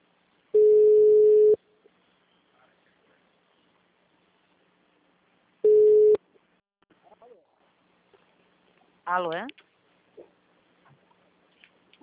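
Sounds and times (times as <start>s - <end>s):
ringback tone beeps while placing an outgoing telephone call: 0.6s - 1.6s, 5.6s - 6.2s
speech: 9.1s - 9.6s.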